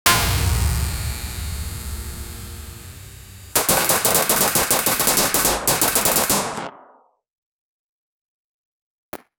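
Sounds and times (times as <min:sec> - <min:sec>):
energy burst in a cyberpunk gunfight at night: 0:00.0 - 0:06.5.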